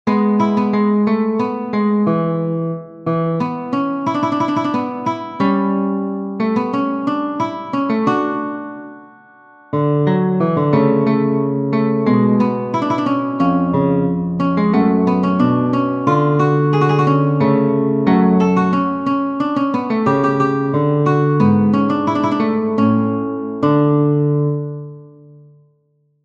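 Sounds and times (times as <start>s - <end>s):
recitative for classical guitar: 0.0s - 25.7s.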